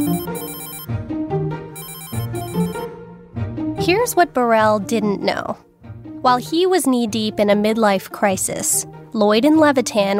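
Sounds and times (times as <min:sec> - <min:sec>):
telephone ringing: 0:00.0 - 0:00.9, 0:01.8 - 0:02.9
speech: 0:04.0 - 0:10.1.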